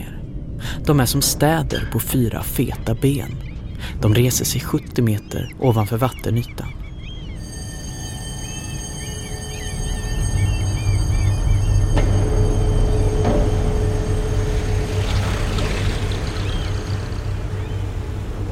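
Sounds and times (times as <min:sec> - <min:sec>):
speech: 0:00.8 - 0:06.8
boat engine droning approaching the harbour at Stavanger Norway in dark and rain: 0:07.4 - 0:18.4
brief metallic knocks: 0:11.7 - 0:17.1
broad wash noise: 0:13.4 - 0:18.4.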